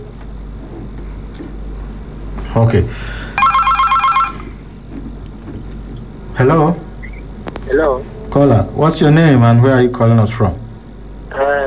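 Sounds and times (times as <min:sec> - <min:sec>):
speech: 0:02.6 - 0:03.2, 0:06.4 - 0:06.8, 0:07.7 - 0:10.6
telephone ringing with an incoming call: 0:03.4 - 0:04.5.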